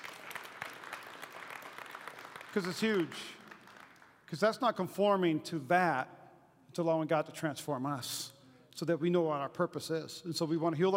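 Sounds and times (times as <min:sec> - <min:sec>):
audience applauding: 0:00.0 - 0:04.3
speech: 0:02.5 - 0:03.4, 0:04.3 - 0:10.9.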